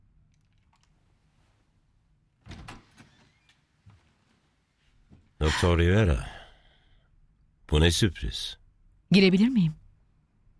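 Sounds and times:
door being unlatched and pulled open: 2.4s - 4.0s
speech: 5.4s - 6.3s, 7.7s - 9.8s.

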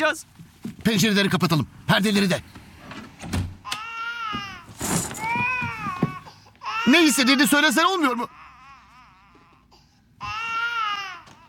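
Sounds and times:
speech: 0.0s - 2.6s, 6.8s - 8.4s
baby crying: 3.6s - 11.4s.

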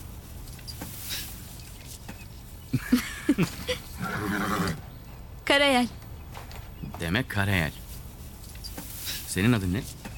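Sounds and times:
low rumbling noise: 0.0s - 10.1s
speech: 2.7s - 3.6s, 5.6s - 6.0s, 7.1s - 7.8s, 9.4s - 10.0s
horse snorting: 3.9s - 4.8s.

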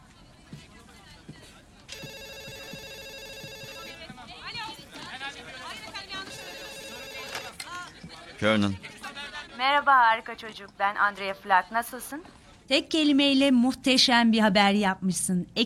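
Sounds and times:
voices murmuring: 0.0s - 13.2s
telephone ringing: 2.0s - 4.0s, 6.2s - 7.7s
speech: 8.4s - 8.9s, 9.6s - 15.6s.

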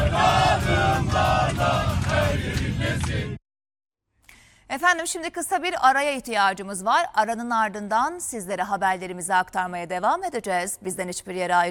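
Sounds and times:
football fans chanting inside an airplane: 0.0s - 3.4s
low rumbling hum inside an airplane: 0.0s - 3.4s
speech: 4.7s - 11.6s.

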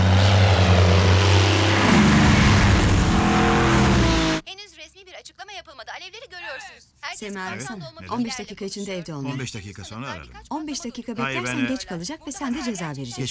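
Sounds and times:
airplane engine roar with a low droning hum: 0.0s - 4.4s
speech: 7.3s - 13.2s.

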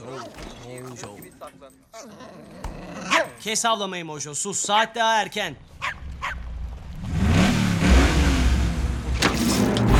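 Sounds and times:
speech: 1.0s - 5.8s
dog barking in short bursts: 3.0s - 3.4s, 5.8s - 6.4s
Camaro car engine revving and pulling away: 6.0s - 9.9s.

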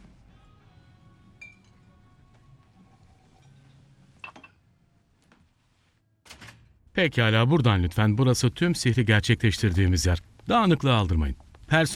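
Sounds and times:
glasses clinking in a toast: 1.4s - 1.9s, 4.2s - 4.6s
speech: 7.0s - 11.9s.

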